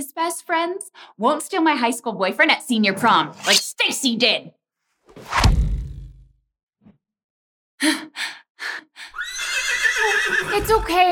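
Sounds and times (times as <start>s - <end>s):
speech: 0.0s - 4.6s, 7.8s - 11.1s
horse whinnying: 9.2s - 10.9s.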